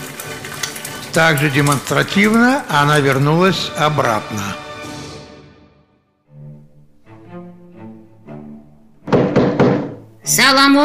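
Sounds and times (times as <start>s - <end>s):
speech: 1.2s - 4.6s, 10.4s - 10.8s
loud quick knocks on a toilet door: 9.0s - 10.1s.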